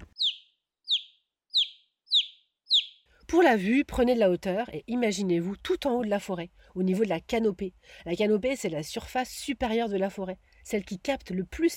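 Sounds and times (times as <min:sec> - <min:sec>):
bird in the forest whistling a high downward-sweeping note: 0:00.1 - 0:03.0
speech: 0:03.3 - 0:11.7.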